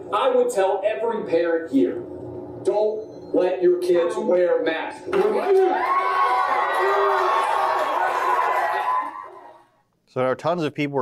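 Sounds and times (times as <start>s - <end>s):
speech: 0.1s - 6.2s, 10.1s - 11.0s
loud outdoor crowd yelling and shouting at school board: 5.1s - 9.7s.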